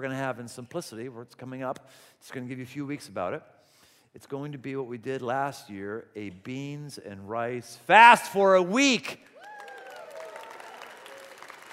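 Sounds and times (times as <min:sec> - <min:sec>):
speech: 0:00.0 - 0:09.3
audience applauding: 0:09.3 - 0:11.7.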